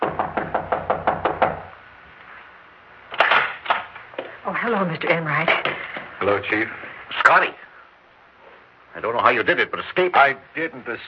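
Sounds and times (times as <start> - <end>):
quick firm knocks on a wooden door: 0.0 - 1.7
speech: 4.7 - 7.6, 9.0 - 11.0.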